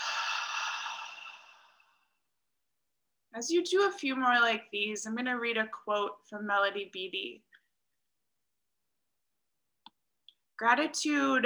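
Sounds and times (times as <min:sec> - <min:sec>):
soft airy exhale through an open mouth during a guided breathing exercise: 0:00.0 - 0:01.9
speech: 0:03.4 - 0:07.5, 0:10.6 - 0:11.4.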